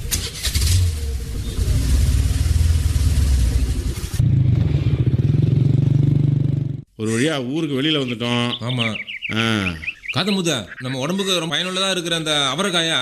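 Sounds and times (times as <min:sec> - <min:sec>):
vehicle engine starting and pulling away: 0:00.0 - 0:06.3
speech: 0:07.0 - 0:13.0.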